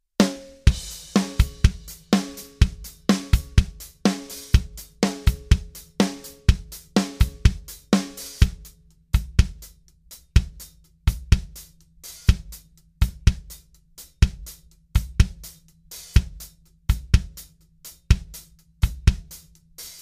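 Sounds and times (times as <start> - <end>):
drum sounds: 0.2 - 19.9.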